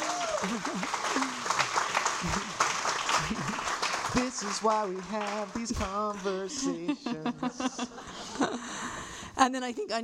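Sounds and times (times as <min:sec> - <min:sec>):
excited voices and cheers: 0:00.0 - 0:00.8
audience applause: 0:00.0 - 0:06.6
laughter: 0:00.2 - 0:01.6, 0:02.2 - 0:03.9, 0:06.3 - 0:09.0
speech: 0:00.4 - 0:01.3, 0:04.2 - 0:08.8, 0:09.4 - 0:10.0.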